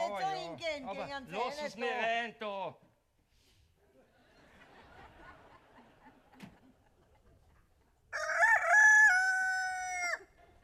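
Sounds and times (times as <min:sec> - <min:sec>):
speech: 0:00.1 - 0:02.9
laughter: 0:03.9 - 0:07.9
rooster crowing: 0:08.1 - 0:10.4.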